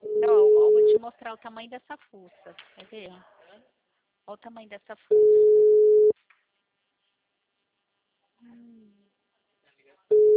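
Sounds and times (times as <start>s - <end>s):
telephone busy signal beeps: 0.0s - 1.0s, 5.1s - 6.1s, 10.1s - 10.3s
speech: 1.1s - 5.8s, 8.4s - 9.0s.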